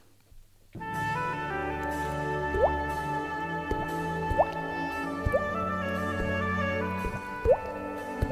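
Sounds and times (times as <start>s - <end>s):
steady sustained music: 0.8s - 8.2s
voice imitating bubbles with popping bloop sounds: 2.5s - 2.8s, 3.7s - 5.6s, 7.0s - 8.2s.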